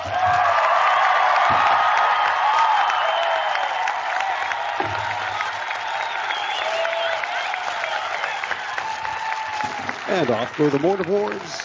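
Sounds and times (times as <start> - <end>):
large crowd applauding at a graduation ceremony: 0.0 - 11.6
scattered cheers and whoops at a graduation ceremony: 0.0 - 11.6
speech: 10.2 - 11.6.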